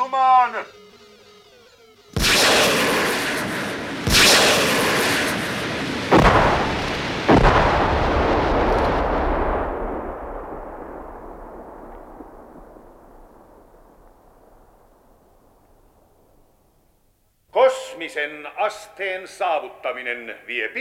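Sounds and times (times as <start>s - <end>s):
speech: 0.1s - 1.1s, 18.0s - 20.7s
heavy gunfire aimed at hills from a craft trying to land: 2.2s - 16.7s.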